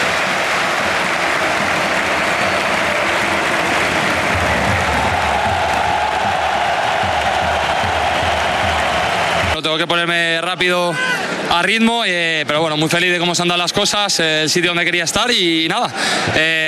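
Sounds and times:
large stadium crowd clapping and cheering: 0.0s - 10.4s
speech: 9.8s - 16.6s.

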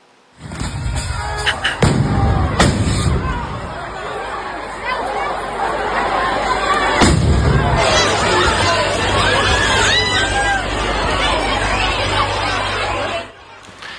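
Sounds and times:
dense panicked crowd chattering and clamoring: 0.0s - 13.9s
firework bangs at a town festival fireworks display: 0.4s - 3.6s, 7.0s - 8.0s.

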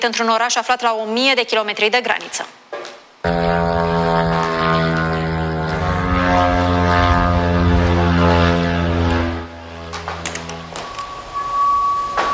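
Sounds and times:
speech: 0.0s - 2.6s, 3.2s - 4.3s
rumbling noise: 3.2s - 12.3s
faint tone: 3.3s - 9.1s, 10.6s - 12.3s
propeller-driven kamikaze drone flying overhead with buzzing engine whine: 3.3s - 12.3s.

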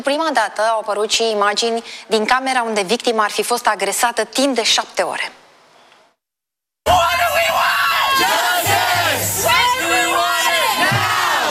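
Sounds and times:
speech: 0.0s - 5.4s
students protesting on a university campus shouting and chanting: 6.9s - 11.4s.

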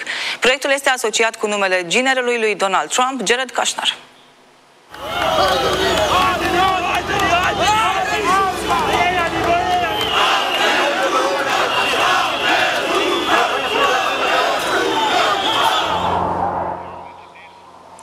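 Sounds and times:
speech: 0.4s - 4.1s
large protest crowd of thousands of Albanians shouting in the street in Tirana: 4.9s - 17.2s.

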